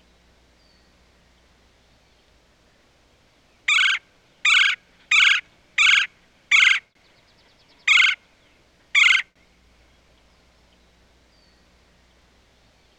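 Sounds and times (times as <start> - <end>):
red-bellied woodpecker giving kwirr calls: 3.7 - 6.9, 7.8 - 8.2, 8.9 - 9.4.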